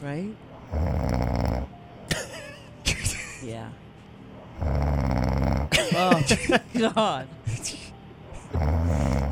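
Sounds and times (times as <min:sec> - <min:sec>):
speech: 0:00.0 - 0:01.2, 0:03.4 - 0:03.8, 0:06.0 - 0:07.8
loud rough rattling snore: 0:00.7 - 0:01.7, 0:04.6 - 0:05.7, 0:08.5 - 0:09.3
laughter: 0:05.7 - 0:07.2.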